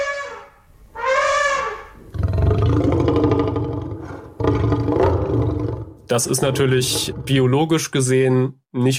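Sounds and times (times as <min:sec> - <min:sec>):
film Tyrannosaurus rex roar built from elephant and lion sounds: 0:02.1 - 0:07.5
speech: 0:06.2 - 0:08.9.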